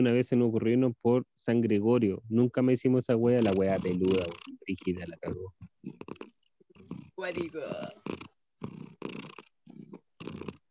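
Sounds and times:
speech: 0.0 - 6.0, 7.2 - 8.2
cat purring: 3.2 - 10.6.

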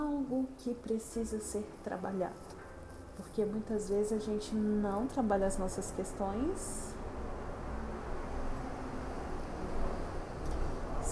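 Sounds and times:
speech: 0.3 - 2.6, 3.2 - 6.9
bus engine rumbling past outside: 5.8 - 11.1.

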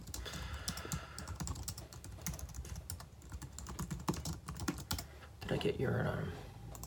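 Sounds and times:
rapid typing on a computer keyboard: 0.0 - 5.1
speech: 5.5 - 6.4.

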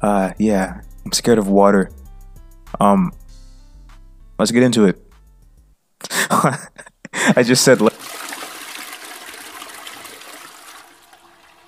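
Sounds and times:
speech: 0.0 - 2.0, 2.7 - 3.2, 4.4 - 5.0, 6.0 - 7.9
toilet flush: 7.5 - 11.6.

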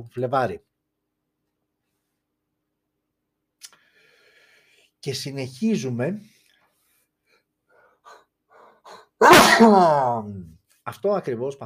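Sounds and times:
speech: 0.0 - 0.7, 5.0 - 6.4, 8.9 - 11.6
person sneezing: 8.9 - 10.2.

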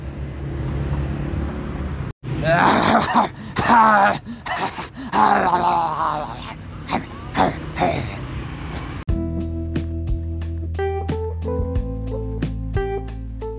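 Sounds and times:
low road rumble: 0.0 - 13.5
man's voice barking and growling imitating a dog: 2.3 - 8.2.

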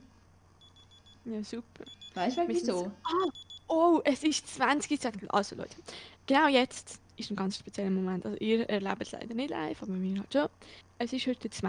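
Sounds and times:
alarm clock beeping: 0.6 - 1.2, 1.8 - 3.7
speech: 1.2 - 11.6.

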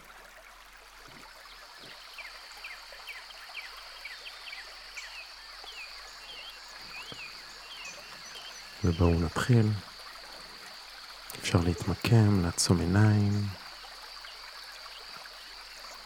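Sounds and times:
faint continuous insect-like hum: 0.0 - 16.0
soft rush of flowing stream water: 0.0 - 16.0
quick bird chirps: 1.1 - 13.6
speech: 8.8 - 9.9, 11.5 - 13.6.

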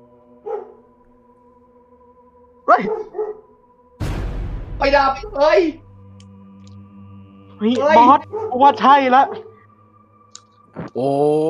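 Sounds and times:
dog bark or yelp: 0.4 - 0.9, 2.7 - 3.6, 7.9 - 9.6
speech: 2.7 - 3.2, 4.8 - 5.8, 7.6 - 9.5, 11.0 - 11.4.

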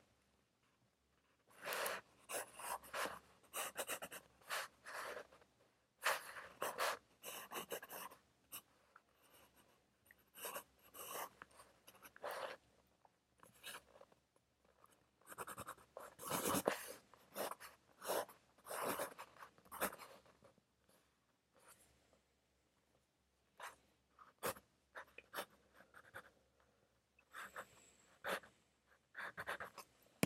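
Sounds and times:
pencil scratching across paper while studying: 1.5 - 12.6, 15.2 - 20.4, 23.6 - 26.4, 27.3 - 30.2.

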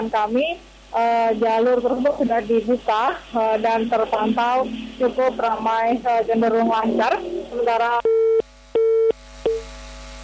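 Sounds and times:
speech: 0.0 - 8.1
telephone busy tone after phone call disconnects: 8.0 - 9.6.

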